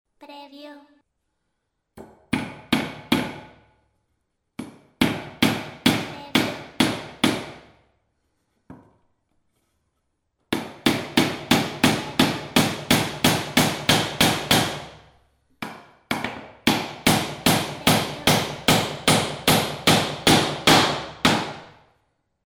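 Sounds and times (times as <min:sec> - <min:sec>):
hammer hitting wood: 0:02.0 - 0:03.6, 0:04.6 - 0:07.8, 0:10.5 - 0:15.0, 0:15.6 - 0:21.8.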